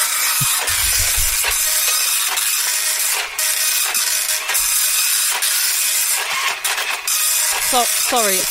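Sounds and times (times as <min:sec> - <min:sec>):
printer printing a page: 0:00.2 - 0:08.5.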